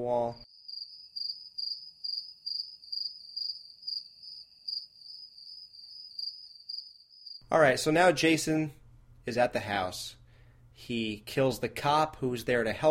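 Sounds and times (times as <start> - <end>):
speech: 0.0 - 0.5, 7.5 - 10.2, 10.8 - 12.8
crickets chirping: 0.4 - 7.4.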